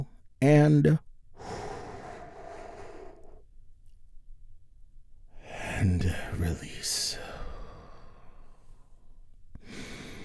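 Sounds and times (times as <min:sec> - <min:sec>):
speech: 0:00.0 - 0:01.1, 0:05.8 - 0:07.2
short voiced sigh: 0:01.4 - 0:03.4, 0:07.2 - 0:08.7
long airy deep breath drawn in slowly: 0:01.4 - 0:03.5, 0:07.2 - 0:10.2.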